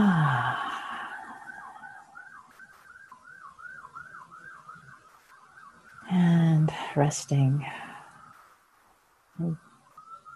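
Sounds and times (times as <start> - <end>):
passing ambulance siren wailing in a rising-and-falling warble: 0.0 - 6.9, 9.4 - 10.3
speech: 7.0 - 7.8, 9.4 - 9.7.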